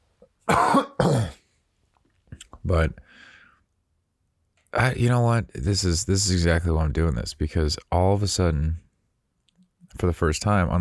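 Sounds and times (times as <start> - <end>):
person coughing harshly: 0.5 - 1.5
speech: 2.7 - 3.3, 4.7 - 8.8, 10.0 - 10.7.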